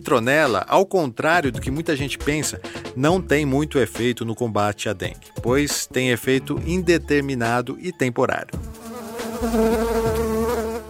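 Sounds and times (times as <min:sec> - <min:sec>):
speech: 0:00.0 - 0:08.8, 0:09.4 - 0:10.2
mosquito buzzing: 0:08.6 - 0:10.8.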